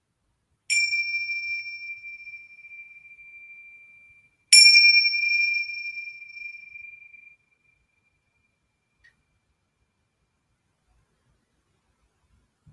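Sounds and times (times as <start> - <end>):
meditation bell strikes: 0.7 - 8.5.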